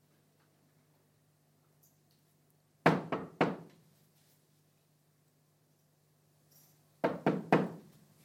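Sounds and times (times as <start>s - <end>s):
knocking on a hollow wooden piano: 7.0s - 7.8s.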